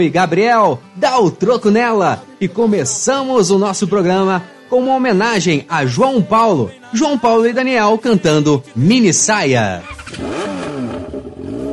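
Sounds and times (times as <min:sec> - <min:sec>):
speech: 0:00.0 - 0:10.4
motorcycle engine revving: 0:09.8 - 0:11.7.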